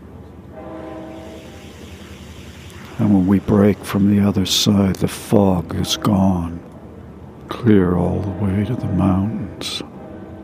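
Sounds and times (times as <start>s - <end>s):
train running fast on flat track: 0.0s - 10.4s
train horn: 0.4s - 4.6s, 5.6s - 6.5s, 8.0s - 10.4s
speech: 3.1s - 6.7s, 7.6s - 9.9s.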